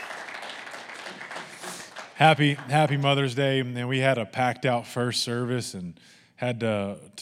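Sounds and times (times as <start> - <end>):
audience applauding moms: 0.0 - 3.4
speech: 2.2 - 7.1.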